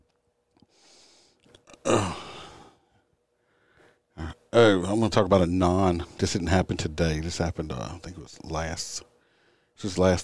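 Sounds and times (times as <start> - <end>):
quiet breathing: 0.6 - 1.5, 2.1 - 4.2, 9.1 - 9.8
person yawning: 1.7 - 2.8
speech: 4.5 - 9.1, 9.8 - 10.2.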